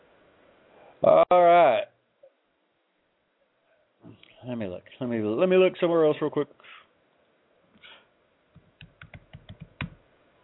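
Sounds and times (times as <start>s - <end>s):
speech: 1.0s - 1.9s, 4.5s - 6.8s
typing on a computer keyboard: 8.6s - 10.0s.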